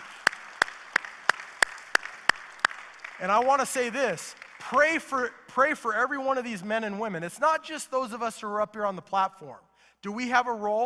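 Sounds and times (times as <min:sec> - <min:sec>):
church service audience clapping in a steady even rhythm: 0:00.0 - 0:05.5
speech: 0:03.2 - 0:10.8.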